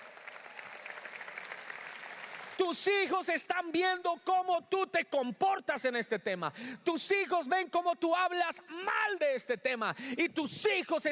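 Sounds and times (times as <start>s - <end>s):
congregation applauding: 0.0s - 2.9s
speech: 2.6s - 11.1s.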